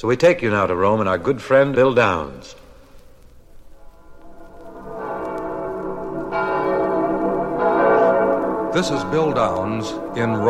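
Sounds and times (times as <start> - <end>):
speech: 0.0 - 2.6, 8.7 - 10.4
church bells ringing for midnight mass: 3.8 - 10.4.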